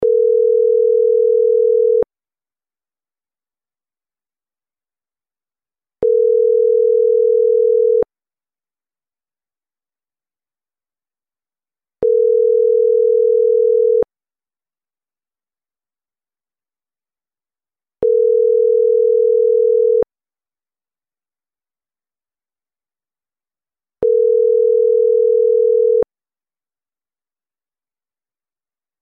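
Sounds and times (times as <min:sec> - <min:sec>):
US telephone ringing tone: 0:00.0 - 0:02.1, 0:06.0 - 0:08.1, 0:12.0 - 0:14.1, 0:18.0 - 0:20.1, 0:24.0 - 0:26.1.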